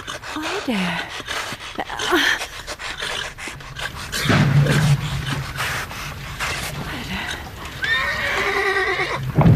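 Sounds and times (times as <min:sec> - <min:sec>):
restless horse snorting on ice: 0:00.0 - 0:09.4
speech: 0:00.4 - 0:02.4
horse giving shrill wavering whinnies: 0:07.8 - 0:09.4.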